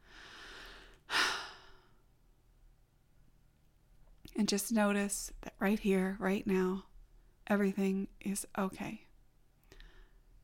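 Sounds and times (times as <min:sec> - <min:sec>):
deep human breath: 0:00.0 - 0:02.0, 0:09.7 - 0:10.3
speech: 0:04.4 - 0:06.9, 0:07.5 - 0:09.1.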